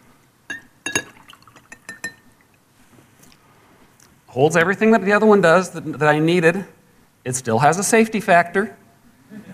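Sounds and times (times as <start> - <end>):
drinking glass clinking as it is picked up and set down: 0.5 - 2.5
speech: 4.4 - 9.5.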